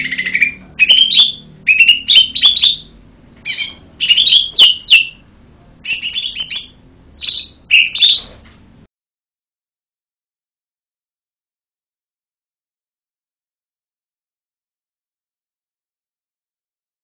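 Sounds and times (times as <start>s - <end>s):
bird singing lively high chirped phrases: 0.0s - 5.2s, 5.8s - 8.4s.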